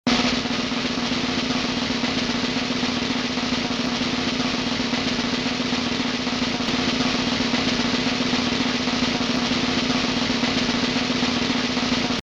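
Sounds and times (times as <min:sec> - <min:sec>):
drum: 0:00.1 - 0:12.2.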